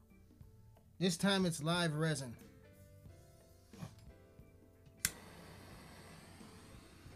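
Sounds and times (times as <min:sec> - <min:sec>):
speech: 0:01.0 - 0:02.5
sharp click igniting a butane torch: 0:05.0 - 0:07.1
steady hissing roar of butane torch flame: 0:05.2 - 0:07.1.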